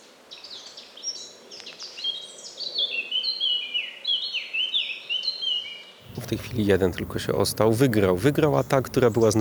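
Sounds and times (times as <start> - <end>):
male Eurasian blackcaps warbling: 0.0 - 9.4
two male Eurasian blackcaps squabbling with harsh calls: 6.0 - 9.4
speech: 6.2 - 9.4.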